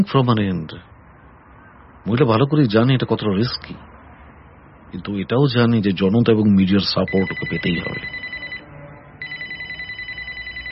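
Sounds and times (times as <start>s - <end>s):
speech: 0.0s - 0.9s, 2.0s - 3.9s, 4.9s - 8.2s
low hum: 0.0s - 10.7s
home telephone ringing with electronic tone: 7.0s - 10.7s.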